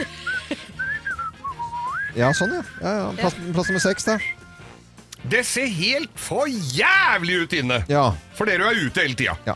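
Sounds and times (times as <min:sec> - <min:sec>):
person whistling a short wandering melody: 0:00.1 - 0:04.6
speech: 0:02.2 - 0:04.4, 0:05.3 - 0:09.5.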